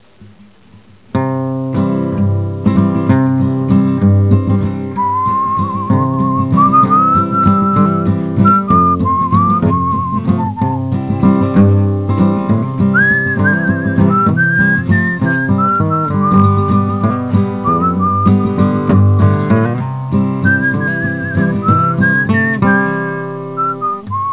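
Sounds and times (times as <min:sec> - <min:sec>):
guitar picking: 0:00.2 - 0:24.3.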